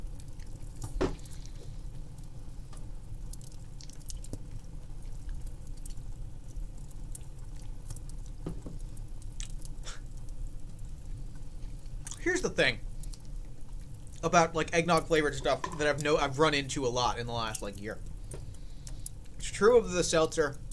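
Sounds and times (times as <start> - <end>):
chewing food with soft wet smacks: 0.0 - 19.5, 20.2 - 20.7
speech: 12.4 - 12.8, 14.2 - 18.1, 19.6 - 20.6.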